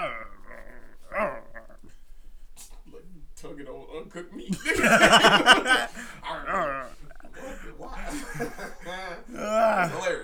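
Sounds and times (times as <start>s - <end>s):
person imitating a dog growl: 0.0s - 1.9s, 6.4s - 7.3s, 9.3s - 10.0s
speech: 4.0s - 5.9s
laughter: 4.4s - 10.2s.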